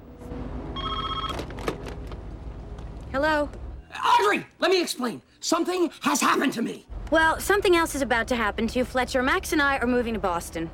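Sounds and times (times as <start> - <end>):
smashed office telephone ringing for an incoming call: 0.8 - 1.6
speech: 3.1 - 10.7.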